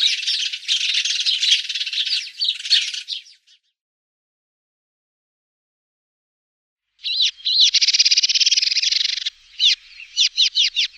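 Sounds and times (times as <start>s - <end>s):
house sparrow chirping and chattering: 0.0s - 3.7s, 7.0s - 10.9s.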